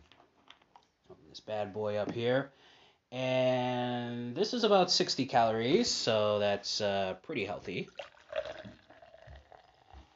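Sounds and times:
speech: 0:01.4 - 0:08.1
guava kombucha pouring into a pilsner glass: 0:07.9 - 0:10.1.

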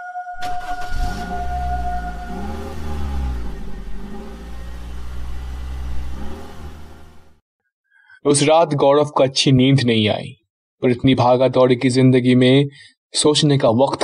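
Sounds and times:
car engine starting and revving as the car drives off: 0:00.4 - 0:07.4
speech: 0:08.2 - 0:14.0.

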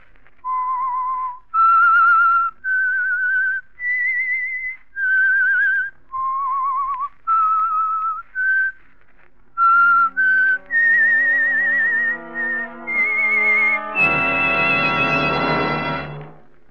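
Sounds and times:
lone whistler whistling a slow wavering melody: 0:00.4 - 0:08.8, 0:09.6 - 0:15.8
orchestral instruments building to a full chord: 0:09.7 - 0:16.6.

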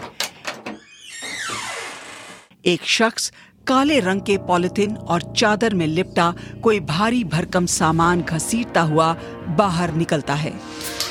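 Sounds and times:
government flat door creaking open: 0:00.0 - 0:02.5
speech: 0:02.6 - 0:11.0.

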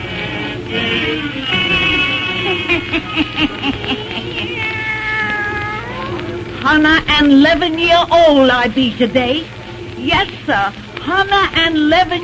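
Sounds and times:
laughter: 0:00.8 - 0:04.8
speech: 0:02.9 - 0:04.0, 0:06.7 - 0:12.2
black cat meowing and yowling: 0:04.4 - 0:06.3.

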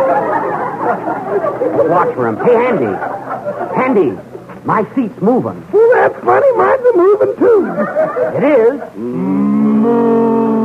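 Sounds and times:
laughter: 0:00.0 - 0:04.5, 0:05.8 - 0:10.6
speech: 0:01.6 - 0:10.4
cow mooing: 0:09.0 - 0:10.6.

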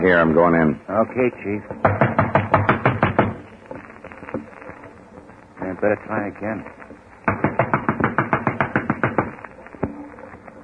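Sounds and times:
speech: 0:00.0 - 0:02.2, 0:05.8 - 0:06.8
knocking on a wooden door: 0:01.8 - 0:03.4, 0:07.3 - 0:09.3.

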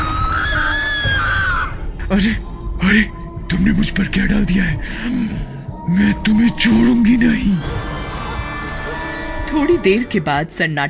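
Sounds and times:
long shrill scream: 0:00.0 - 0:01.9, 0:07.6 - 0:09.9
low rumbling background: 0:00.0 - 0:10.4
speech: 0:02.1 - 0:03.1, 0:03.8 - 0:07.9, 0:09.5 - 0:10.8.

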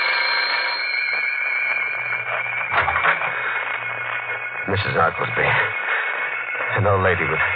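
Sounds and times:
doorbell ringing as a raspy electric buzz: 0:00.0 - 0:04.7
speech: 0:04.7 - 0:05.8, 0:06.7 - 0:07.5.

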